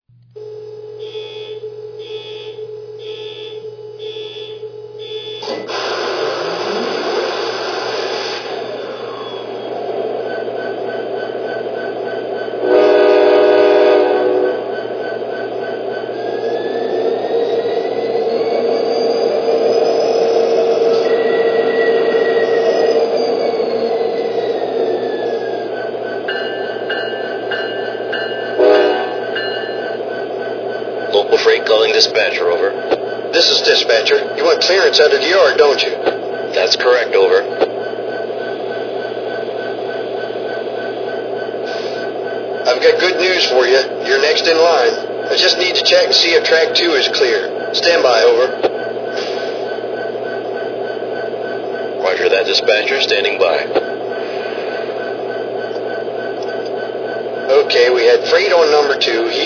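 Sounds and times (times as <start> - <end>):
SD70ACE locomotive: 5.0 - 59.4.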